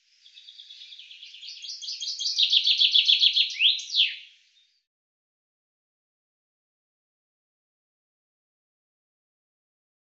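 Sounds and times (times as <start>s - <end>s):
common chaffinch singing: 0.0s - 4.3s.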